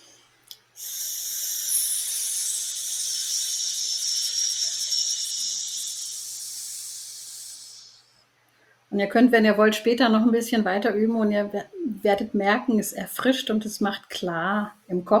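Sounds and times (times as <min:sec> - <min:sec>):
hissing exhaled breath from a circular breathing exercise: 0:00.8 - 0:08.2
speech: 0:09.0 - 0:15.1.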